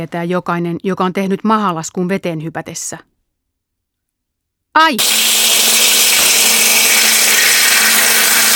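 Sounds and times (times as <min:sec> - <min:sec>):
speech: 0:00.0 - 0:03.1, 0:04.8 - 0:05.2
water jet cutter slicing through metal or stone: 0:05.0 - 0:08.5.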